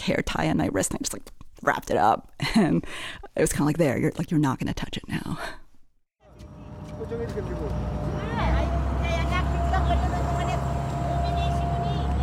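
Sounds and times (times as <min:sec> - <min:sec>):
speech: 0:00.0 - 0:05.6, 0:07.0 - 0:08.0
motor of an old blue industrial fishing boat droning and picking up speed: 0:06.2 - 0:12.2.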